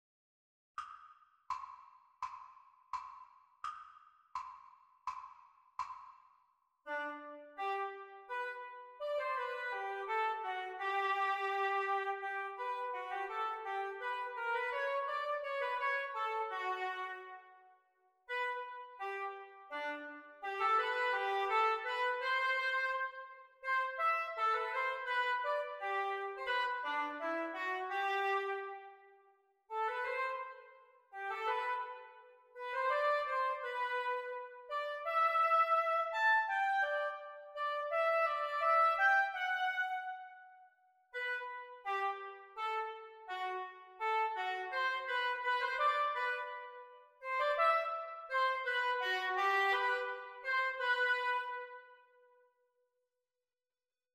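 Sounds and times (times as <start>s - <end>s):
oboe duet: 6.9s - 17.4s, 18.3s - 28.9s, 29.7s - 40.4s, 41.2s - 51.9s.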